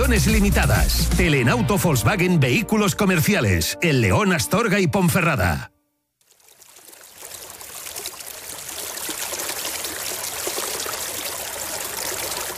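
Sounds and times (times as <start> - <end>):
speech: 0.1 - 5.8
water flowing in a stream: 6.2 - 12.5.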